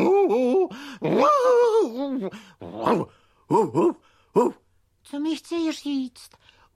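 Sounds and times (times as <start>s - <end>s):
person imitating dog barking and growly whines: 0.0s - 4.6s
speech: 1.0s - 1.4s, 2.2s - 6.7s.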